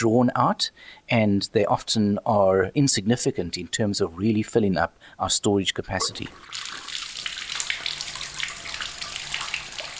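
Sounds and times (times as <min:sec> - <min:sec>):
speech: 0:00.0 - 0:06.9
water running from a tap: 0:06.0 - 0:09.9.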